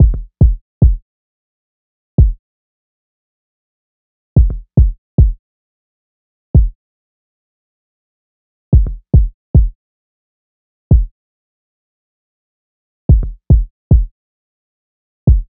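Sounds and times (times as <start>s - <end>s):
kick drum: 0.0s - 1.0s, 2.2s - 2.4s, 4.4s - 5.4s, 6.6s - 6.8s, 8.7s - 9.8s, 10.9s - 11.1s, 13.1s - 14.1s, 15.3s - 15.5s.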